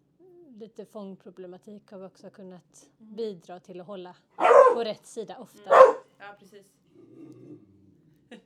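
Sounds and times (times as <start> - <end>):
speech: 0.6 - 6.8
short sharp yip-like sound: 4.4 - 4.8
puppy growling: 4.4 - 4.9, 5.7 - 6.0.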